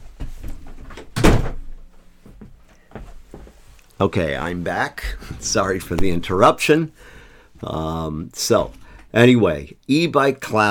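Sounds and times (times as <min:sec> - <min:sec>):
shuffling footsteps: 0:00.0 - 0:01.0, 0:01.8 - 0:09.1
quiet movement in the room: 0:00.0 - 0:10.7
door shutting with a solid thunk: 0:01.0 - 0:01.7
speech: 0:04.0 - 0:10.7.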